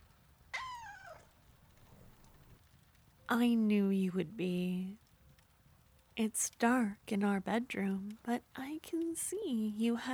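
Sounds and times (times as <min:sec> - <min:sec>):
domestic cat meowing: 0:00.5 - 0:01.3
speech: 0:03.3 - 0:05.0, 0:06.2 - 0:10.1.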